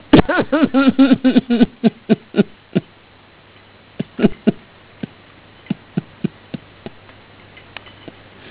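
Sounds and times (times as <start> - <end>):
mother laughing: 0.1 - 2.9, 4.0 - 7.0.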